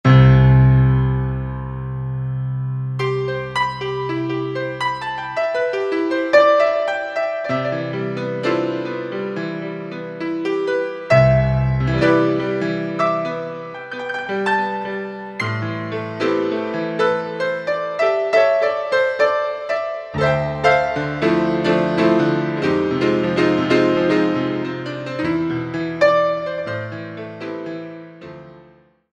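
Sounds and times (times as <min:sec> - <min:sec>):
grand piano: 0:00.0 - 0:29.1.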